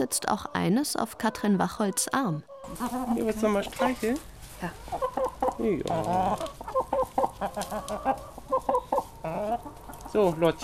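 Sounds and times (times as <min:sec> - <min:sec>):
speech: 0:00.0 - 0:05.0, 0:05.6 - 0:06.6, 0:07.4 - 0:08.4, 0:09.3 - 0:10.6
several chickens clucking while pecking dried mealworms from a hand: 0:00.0 - 0:10.6
rustling: 0:02.6 - 0:10.6.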